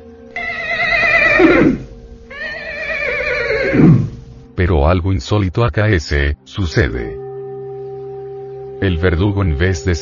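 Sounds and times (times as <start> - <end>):
horse neighing: 0.4 - 4.3
speech: 4.6 - 7.2, 8.8 - 10.0.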